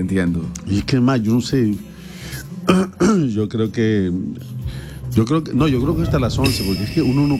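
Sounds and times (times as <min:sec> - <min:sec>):
speech: 0:00.0 - 0:07.3
raspy throat clearing: 0:02.7 - 0:03.3
short coughs: 0:02.7 - 0:03.3.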